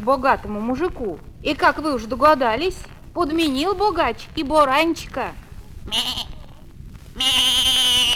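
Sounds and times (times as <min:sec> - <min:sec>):
speech: 0:00.0 - 0:06.3, 0:07.2 - 0:08.1
young ram bleating: 0:05.9 - 0:06.6, 0:07.2 - 0:08.1.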